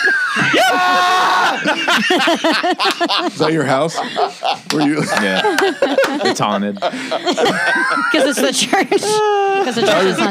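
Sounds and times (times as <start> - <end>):
laughter-like sounds: 0.0 - 10.2
person imitating high wavering screams: 0.1 - 1.6
speech: 2.1 - 10.2.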